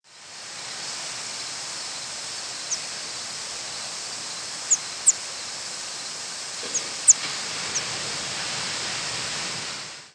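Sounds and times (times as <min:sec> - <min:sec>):
steady broad hiss: 0:00.0 - 0:10.1
Northern parula giving very high thin nocturnal flight calls: 0:04.6 - 0:05.2, 0:06.7 - 0:07.9.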